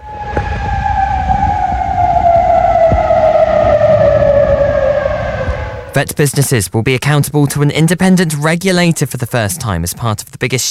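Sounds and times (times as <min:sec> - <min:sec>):
air raid siren wailing: 0:00.0 - 0:06.3
speech: 0:06.0 - 0:10.7.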